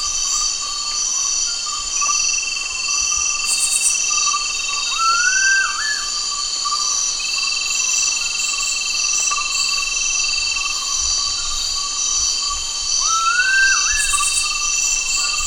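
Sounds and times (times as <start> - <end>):
high insect chorus in Borneo: 0.0 - 15.4
Gould's frogmouth whistle in Borneo: 13.1 - 14.5.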